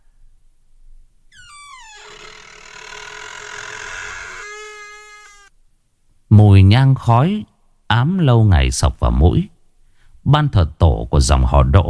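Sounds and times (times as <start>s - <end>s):
large ironwood wooden door slowly creaking open: 1.3s - 5.5s
speech: 6.4s - 9.5s, 10.3s - 11.8s.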